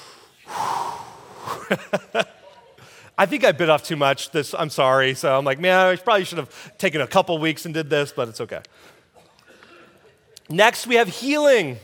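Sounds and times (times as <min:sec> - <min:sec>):
deep breath: 0:00.0 - 0:01.7
laughter: 0:01.6 - 0:03.0
speech: 0:01.7 - 0:02.4, 0:03.2 - 0:09.0, 0:10.5 - 0:11.8.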